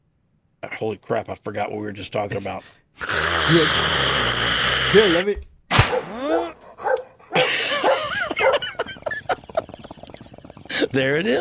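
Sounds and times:
speech: 0.8 - 6.6, 10.8 - 11.4
dog barking and yelping: 5.9 - 8.9
laughter: 7.3 - 11.4.

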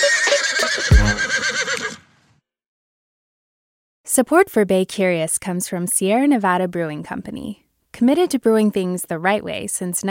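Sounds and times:
horse whinnying: 0.0 - 2.1
speech: 4.2 - 10.0.

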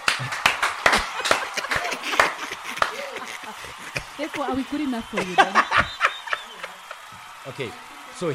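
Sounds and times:
few people clapping, applauding a question: 0.0 - 8.3
faint chatter or laughter: 0.9 - 7.3
speech: 4.2 - 5.9, 7.4 - 8.3.

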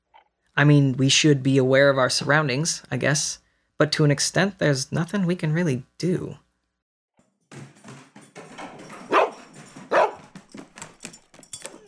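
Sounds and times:
speech: 0.6 - 6.4
dog barking: 9.1 - 10.3.

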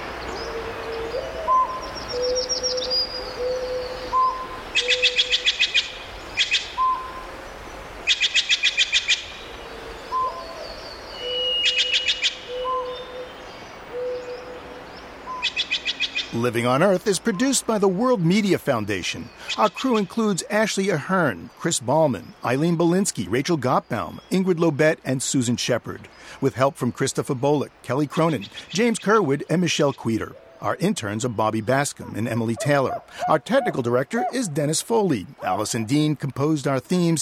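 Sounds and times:
low hooting owl-like bird notes in a redwood forest: 0.5 - 7.3, 8.1 - 13.4, 13.9 - 14.8
speech: 16.4 - 37.2.

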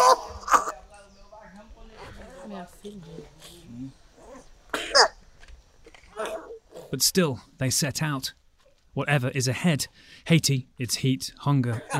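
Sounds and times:
people talking quietly: 0.0 - 11.9
speech: 2.8 - 4.1, 6.9 - 8.4, 9.0 - 11.9
child coughing: 4.7 - 5.1.

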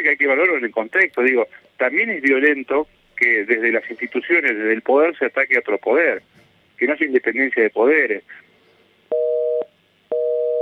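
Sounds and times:
speech: 0.1 - 8.4
telephone busy signal after a dropped call: 9.1 - 10.6.

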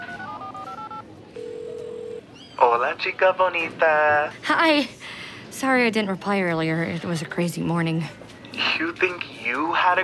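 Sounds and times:
electronic phone dialing tones: 0.0 - 2.2
speech: 2.6 - 10.0.

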